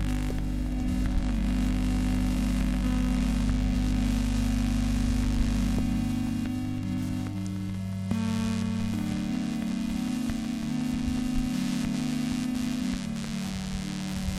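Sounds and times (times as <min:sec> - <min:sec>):
electromagnetic interference drone captured with an EM coil pick-up: 0:00.0 - 0:14.3
low hum: 0:00.0 - 0:14.3
stuttering buzzy pulses: 0:00.0 - 0:14.3.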